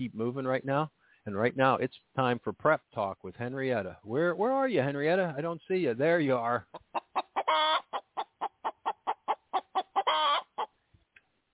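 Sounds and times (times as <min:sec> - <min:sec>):
speech: 0:00.0 - 0:07.0
hen clucking with drawn-out calls: 0:06.6 - 0:10.8.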